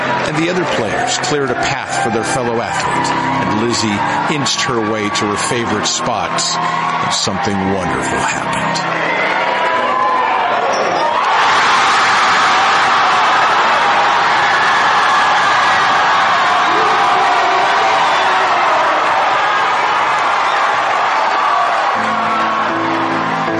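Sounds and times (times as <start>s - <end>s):
large indoor crowd cheering and whooping at a basketball game in Kentridge: 0.0s - 23.5s
speech: 0.3s - 9.6s.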